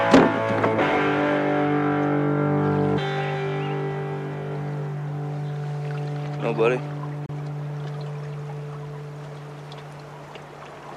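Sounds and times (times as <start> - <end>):
steady low hum: 0.2 - 10.9
water lapping around a small boat: 5.2 - 10.9
faint splashy ticks: 5.8 - 10.9
speech: 6.5 - 6.9.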